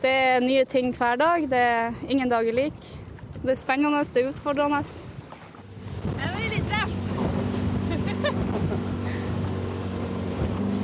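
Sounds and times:
speech: 0.0 - 5.1
rushing water: 1.3 - 10.8
wind noise: 1.4 - 10.8
150-horsepower motorboat engine droning at speed: 5.1 - 10.8.

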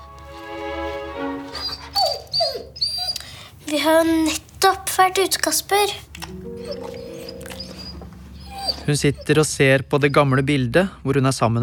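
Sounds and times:
dog whining and whimpering in a bedroom: 1.5 - 3.4, 6.3 - 10.6
faint hum: 1.5 - 11.6
speech: 3.7 - 6.4, 8.9 - 11.6.

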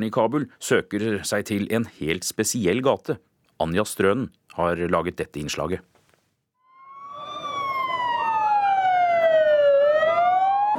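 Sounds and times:
speech: 0.0 - 5.9
ambulance siren wailing: 6.6 - 10.7.

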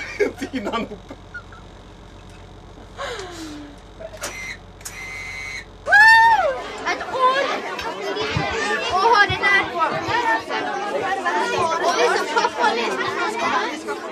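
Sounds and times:
laughter: 0.0 - 1.9, 10.1 - 13.7
speech: 0.5 - 1.4, 9.8 - 14.1
crowd of kindergarten children in winter suits chattering and squealing aboard a book boat library: 1.4 - 14.1
short electronic tones: 3.8 - 5.9
rising whistle: 4.3 - 6.6.

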